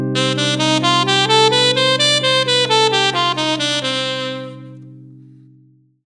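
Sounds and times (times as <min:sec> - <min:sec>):
saxophone playing jazz in a minor key: 0:00.2 - 0:04.9.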